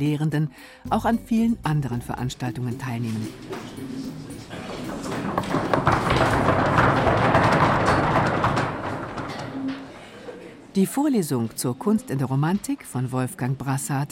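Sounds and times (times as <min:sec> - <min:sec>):
speech: 0:00.0 - 0:04.6, 0:10.8 - 0:14.1
faint murmuring: 0:03.1 - 0:06.0, 0:09.6 - 0:10.8
students rapping knuckles on desks as applause: 0:03.5 - 0:09.9.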